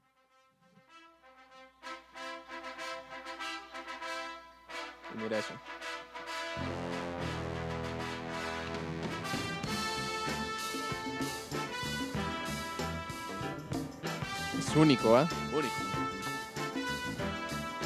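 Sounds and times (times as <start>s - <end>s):
bright brass fanfares: 0.0s - 17.8s
speech: 5.1s - 5.8s, 6.6s - 7.3s, 14.8s - 15.8s
bold orchestral film theme: 6.5s - 17.8s.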